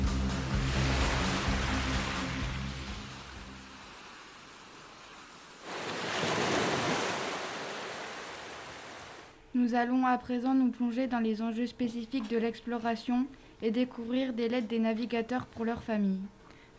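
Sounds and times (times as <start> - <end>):
ocean waves breaking on shore: 0.0 - 9.4
speech: 9.6 - 16.7.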